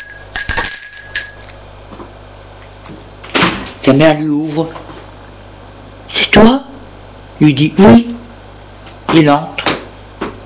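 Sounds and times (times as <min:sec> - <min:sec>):
doorbell ringing at an apartment door: 0:00.0 - 0:02.0
speech: 0:03.9 - 0:04.8, 0:06.3 - 0:06.6, 0:07.4 - 0:08.1, 0:09.1 - 0:09.5.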